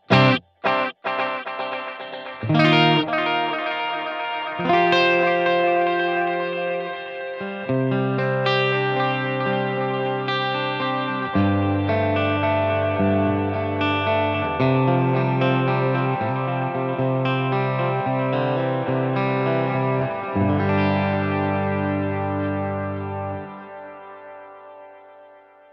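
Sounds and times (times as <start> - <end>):
effected electric guitar with tone control turned up playing chords: 0.0 - 25.7.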